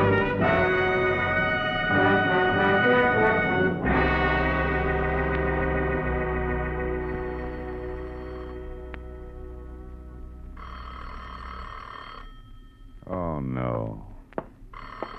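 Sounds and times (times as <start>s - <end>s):
music: 0.0s - 10.6s
humming background: 0.0s - 15.1s
telephone ringing with a shrill electric bell: 7.0s - 8.9s, 10.5s - 13.1s, 14.7s - 15.1s.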